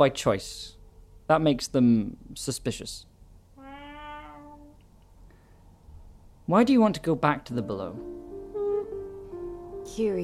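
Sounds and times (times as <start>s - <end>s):
speech: 0.0s - 3.1s, 6.5s - 8.2s, 9.9s - 10.2s
cat meowing: 3.6s - 4.8s.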